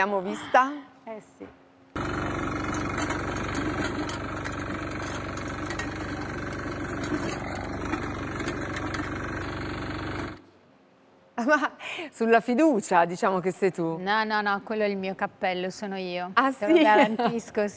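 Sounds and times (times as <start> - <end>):
speech: 0.0 - 2.1, 11.4 - 17.7
small single-cylinder walking tractor engine running: 2.0 - 10.4.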